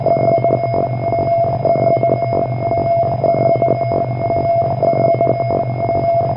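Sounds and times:
video game ambient lair drone inside radar: 0.0s - 6.3s.

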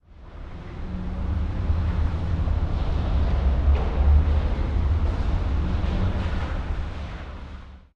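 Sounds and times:
car at a harbor: 0.0s - 7.9s.

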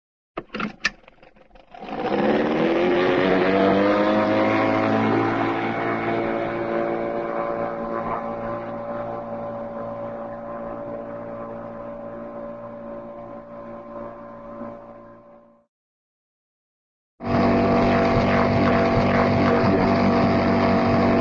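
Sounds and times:
small boat outboard motor starting and pulling away, cartoon style: 0.4s - 9.8s, 17.2s - 21.1s.

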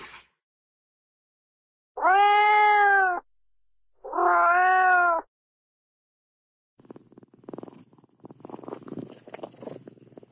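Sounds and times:
cartoon cat meowing: 2.0s - 3.2s, 4.0s - 5.3s.

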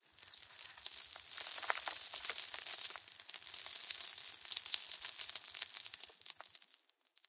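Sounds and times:
random debris ambience: 0.0s - 7.2s.

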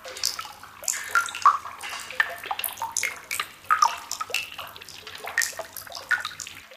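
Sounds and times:
water drips: 0.0s - 6.7s.

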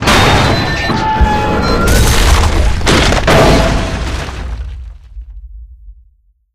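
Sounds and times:
train crashing on a bridge: 0.0s - 4.7s.

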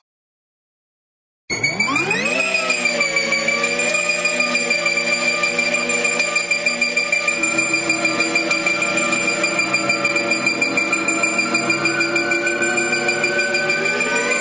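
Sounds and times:
short cartoon sci-fi freeze gun: 1.5s - 14.4s.

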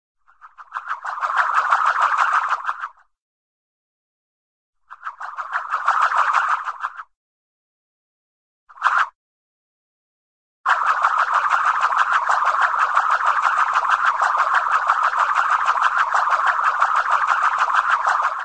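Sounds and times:
slow cartoon frisbee twirl by: 0.2s - 3.1s, 4.8s - 7.1s, 8.7s - 9.2s, 10.7s - 18.4s.

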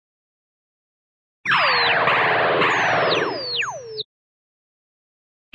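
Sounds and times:
cartoon sci-fi nose cannon shot: 1.5s - 4.1s.

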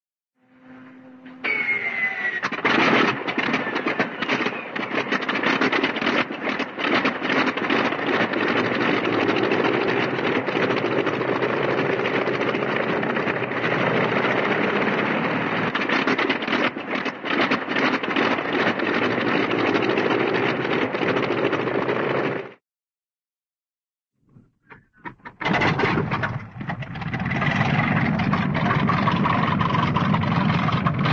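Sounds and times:
cartoon propeller airplane engine starting: 0.6s - 22.6s, 24.3s - 31.1s.

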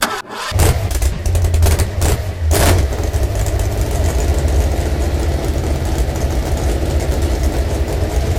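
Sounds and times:
junker vehicle engine start loop for video games: 0.0s - 8.3s.

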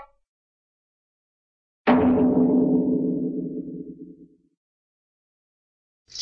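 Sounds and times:
cartoon brake drum hit: 1.9s - 3.9s.

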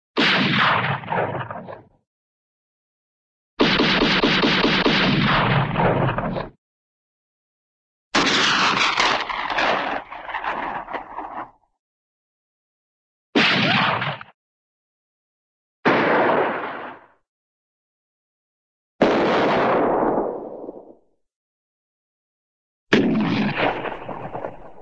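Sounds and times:
cartoon rifle single shot: 0.2s - 1.9s, 3.6s - 6.6s, 8.2s - 11.1s, 13.4s - 14.4s, 15.8s - 17.2s, 19.0s - 20.9s, 22.9s - 24.7s.

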